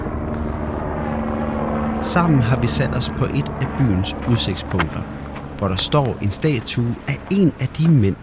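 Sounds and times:
helicopter flying overhead: 0:00.0 - 0:08.2
speech: 0:02.0 - 0:08.2.

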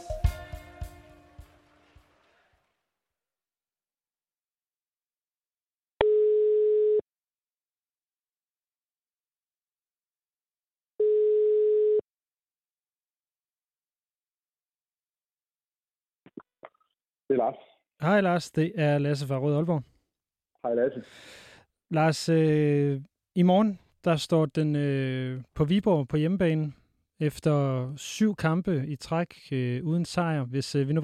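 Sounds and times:
telephone ringback tone: 0:06.0 - 0:07.0, 0:11.0 - 0:12.0
speech: 0:17.3 - 0:19.9, 0:20.6 - 0:31.0.

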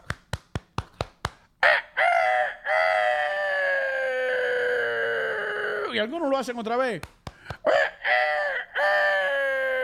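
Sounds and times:
rooster crowing: 0:01.6 - 0:05.8, 0:07.7 - 0:09.8
speech: 0:06.0 - 0:07.8.

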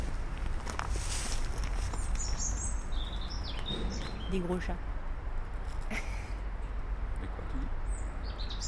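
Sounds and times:
tits, redstarts and blackbirds chirping: 0:00.2 - 0:08.6
low rumble: 0:03.6 - 0:05.8
speech: 0:04.3 - 0:04.9.

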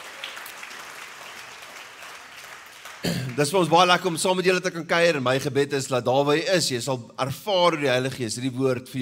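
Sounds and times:
church audience applause: 0:00.0 - 0:04.1
speech: 0:03.0 - 0:09.0.

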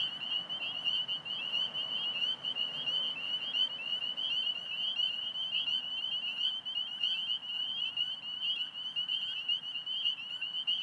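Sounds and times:
low traffic hum: 0:00.0 - 0:06.8
spring peepers calling in mowed cattail and grass habitat in Alexandria Virginia: 0:00.0 - 0:10.8.

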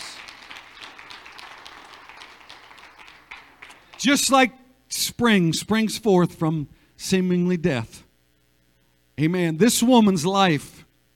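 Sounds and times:
church audience clapping in praise: 0:00.0 - 0:04.5
speech: 0:04.0 - 0:08.0, 0:09.2 - 0:10.8.

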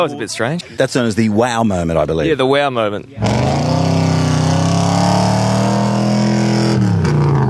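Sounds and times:
speech: 0:00.0 - 0:03.8
V8 car engine revving hard: 0:03.2 - 0:07.4.

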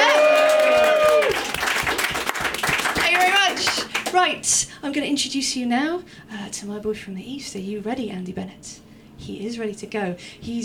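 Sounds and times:
person whooping or cheering: 0:00.0 - 0:01.5
audience applause: 0:00.0 - 0:04.2
speech: 0:04.2 - 0:10.6.

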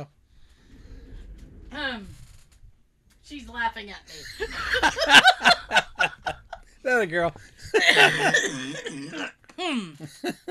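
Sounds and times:
speech: 0:01.7 - 0:02.2, 0:03.3 - 0:05.8, 0:06.8 - 0:10.4
laughter: 0:04.2 - 0:06.6, 0:07.5 - 0:09.2
person coughing and sputtering after a strong drink: 0:07.8 - 0:10.1.

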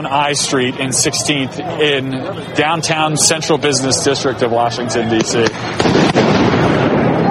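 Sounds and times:
speech: 0:00.0 - 0:06.6
faint crowd voices: 0:00.0 - 0:07.2
fireworks set off by protesters in downtown Washington D.C.: 0:05.2 - 0:07.2.

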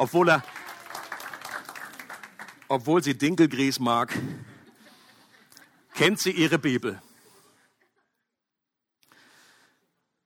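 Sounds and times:
speech: 0:00.0 - 0:00.5, 0:02.7 - 0:04.5, 0:06.0 - 0:07.1
audience applause: 0:00.0 - 0:03.6.

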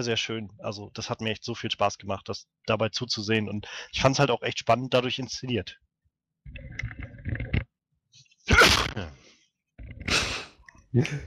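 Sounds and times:
speech: 0:00.0 - 0:05.8, 0:10.9 - 0:11.2
person sneezing loudly: 0:08.5 - 0:09.1.

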